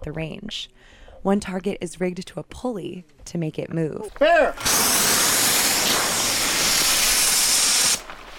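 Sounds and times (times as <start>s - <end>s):
speech: 0.0s - 5.2s
bear pepper spray canister discharging at a range: 4.6s - 8.1s.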